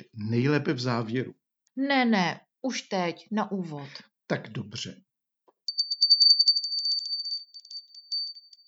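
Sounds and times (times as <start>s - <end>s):
speech: 0.2s - 5.1s
small Christmas hand bell ringing rapidly and brightly: 5.7s - 8.6s.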